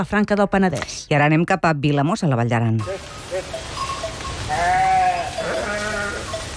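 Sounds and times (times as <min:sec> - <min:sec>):
speech: 0:00.0 - 0:03.7
flock of sheep and goats bleating: 0:02.8 - 0:06.5.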